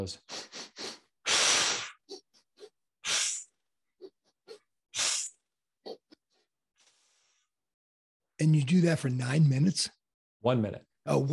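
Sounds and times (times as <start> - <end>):
speech: 0.0 - 0.4, 8.4 - 11.3
short sharp nasal inhalations in a breathing exercise: 0.2 - 2.1, 3.0 - 3.6, 5.0 - 5.5
longer forceful mouth exhalations in a breathing exercise: 0.3 - 2.2, 3.0 - 3.5.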